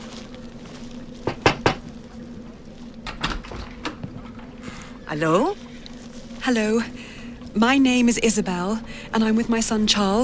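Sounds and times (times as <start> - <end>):
steady low hum: 0.0 - 10.2
knocking on a wooden door: 1.3 - 1.8
speech: 5.1 - 5.6, 6.4 - 7.0, 7.6 - 10.2.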